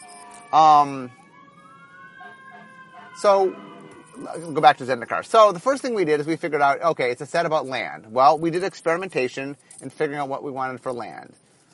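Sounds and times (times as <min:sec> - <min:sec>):
fire truck rising siren wail: 0:00.0 - 0:08.5
low traffic rumble: 0:00.0 - 0:11.2
speech: 0:00.5 - 0:01.2, 0:03.2 - 0:11.4
fire truck horn blasts: 0:02.2 - 0:04.3.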